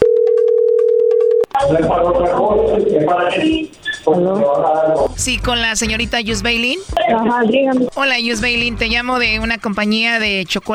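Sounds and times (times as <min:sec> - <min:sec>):
telephone ringing tone: 0:00.0 - 0:01.8
speech: 0:01.7 - 0:10.7.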